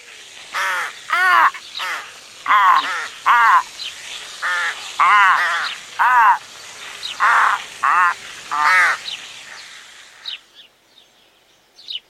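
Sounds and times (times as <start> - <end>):
several crows cawing loudly and harshly: 0.5 - 3.8, 4.4 - 6.4, 7.1 - 9.0.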